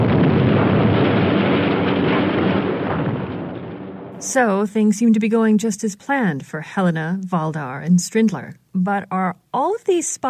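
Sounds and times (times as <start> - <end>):
buildings collapsing with crumbling debris: 0.0 - 4.4
massive explosions rumbling: 0.0 - 4.4
speech: 4.2 - 10.2.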